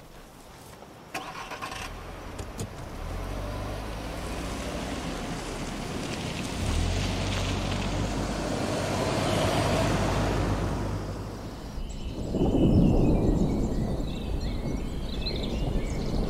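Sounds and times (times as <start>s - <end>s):
50 km/h wind hissing: 2.9s - 16.2s
deep rolling thunder from thunderclouds: 8.0s - 16.2s.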